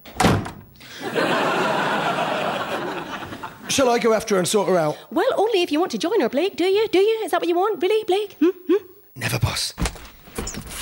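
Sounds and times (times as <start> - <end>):
door slam sound effect: 0.0 - 0.7
group laughing: 0.9 - 4.0
speech: 3.8 - 8.8.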